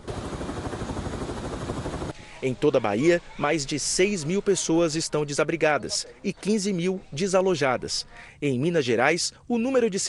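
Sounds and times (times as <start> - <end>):
military police helicopter rotor thumping: 0.0 - 2.1
speech: 2.4 - 10.0.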